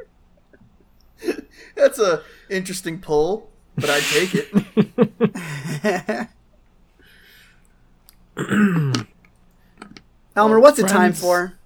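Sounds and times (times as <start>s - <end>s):
speech: 1.2s - 6.4s, 8.4s - 9.1s, 10.4s - 11.6s
laughter: 3.8s - 6.3s
person clearing throat: 8.4s - 9.2s.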